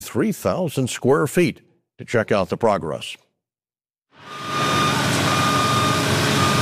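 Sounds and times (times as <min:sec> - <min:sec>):
speech: 0:00.1 - 0:03.2
construction noise: 0:04.2 - 0:06.6
grinding saws on construction site: 0:04.2 - 0:06.6
man lift warning beep on construction site: 0:04.3 - 0:06.6.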